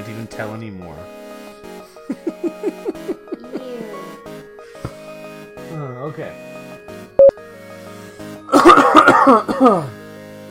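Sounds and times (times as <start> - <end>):
speech: 0.4 - 1.2, 6.1 - 6.5, 9.2 - 10.0
laughter: 2.1 - 3.9
person coughing harshly: 8.5 - 9.9.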